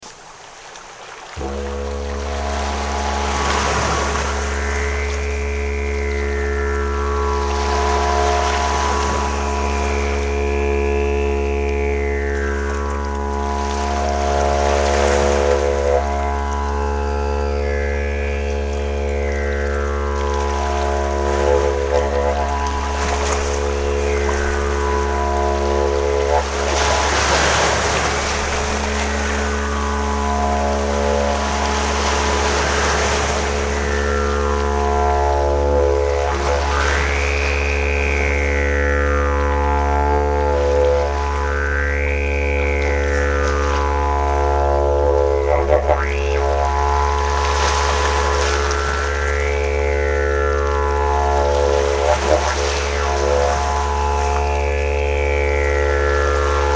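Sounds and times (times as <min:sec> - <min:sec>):
didgeridoo waves: 0:01.4 - 0:56.7.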